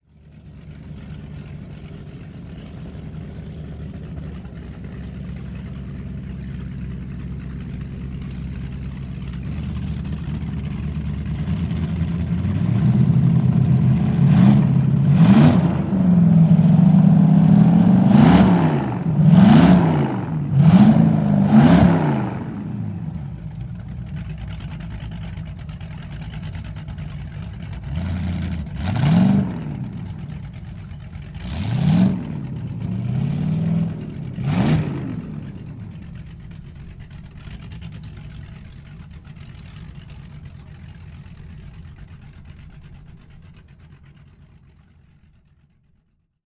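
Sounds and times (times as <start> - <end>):
power boat engine idling and revving: 0.0 - 46.4.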